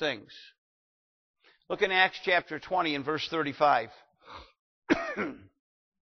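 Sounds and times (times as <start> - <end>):
speech: 0.0 - 0.6, 1.7 - 5.5
harsh throaty cough: 4.9 - 5.6.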